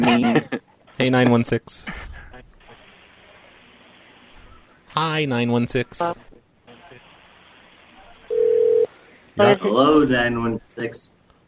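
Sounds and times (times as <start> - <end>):
speech: 0.0 - 2.1, 5.0 - 6.3, 9.4 - 11.2
telephone ringing: 8.3 - 8.9.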